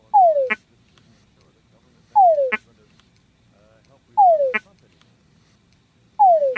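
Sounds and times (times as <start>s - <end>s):
male túngara frog mating call: 0.0s - 0.7s, 2.1s - 2.7s, 4.2s - 4.8s, 6.2s - 6.5s.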